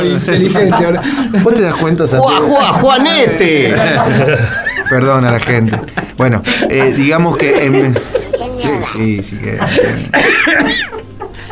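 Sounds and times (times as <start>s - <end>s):
speech: 0.0s - 11.0s
laughter: 0.3s - 8.8s, 9.4s - 11.5s
person coughing and clearing throat: 9.7s - 11.0s.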